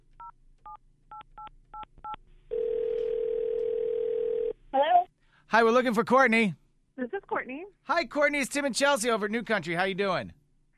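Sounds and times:
phone dial tone: 2.5s - 4.6s
speech: 5.5s - 10.4s.

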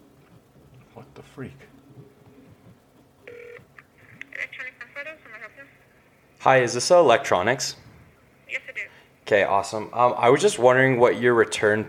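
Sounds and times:
speech: 1.0s - 2.1s, 6.4s - 7.8s, 9.3s - 11.8s
phone keypad dual-tone beep and dialing tones: 3.3s - 3.7s.

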